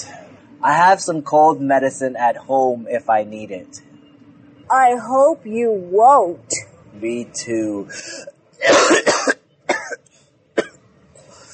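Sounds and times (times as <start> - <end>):
speech: 0.6 - 3.9, 4.7 - 9.1
person coughing: 8.1 - 10.0.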